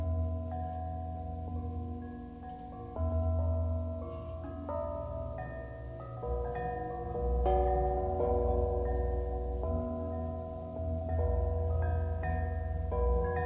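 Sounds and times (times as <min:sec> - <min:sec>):
bells ringing: 0:00.0 - 0:13.4
deep hum: 0:00.0 - 0:13.4.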